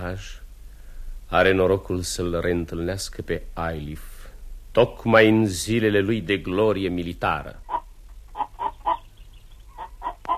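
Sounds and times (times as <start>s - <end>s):
speech: 0.1s - 0.4s, 1.3s - 4.1s, 4.8s - 7.6s
capon clucking: 7.6s - 10.3s.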